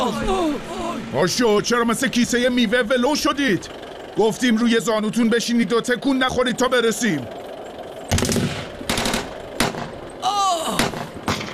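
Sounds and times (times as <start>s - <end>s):
speech: 0.0s - 7.4s
high whining tone sliding down in pitch: 0.0s - 11.3s
machine gun fire during a battle: 8.1s - 10.0s, 10.8s - 11.5s.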